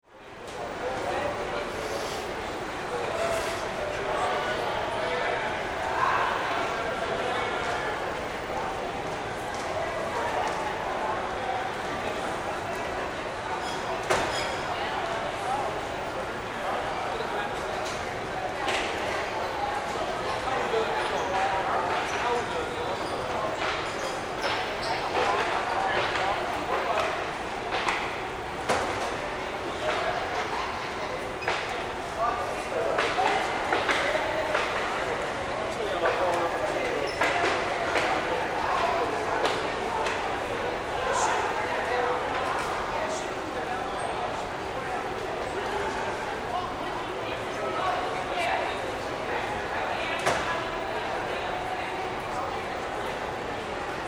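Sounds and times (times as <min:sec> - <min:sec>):
cafeteria ambience: 0:00.0 - 0:54.0.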